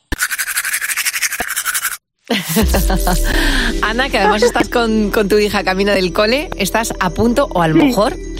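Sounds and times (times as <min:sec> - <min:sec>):
toothbrush scrubbing teeth: 0:00.1 - 0:02.6
speech: 0:02.3 - 0:08.3
laughter: 0:04.2 - 0:04.9.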